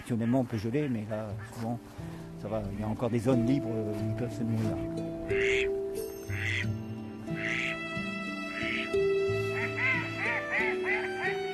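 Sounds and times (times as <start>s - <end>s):
mallard ducks quacking on a bay estuary of salt water: 0.0s - 1.8s, 2.4s - 3.8s, 4.4s - 6.7s, 7.3s - 7.9s, 8.5s - 11.5s
speech: 0.1s - 5.8s.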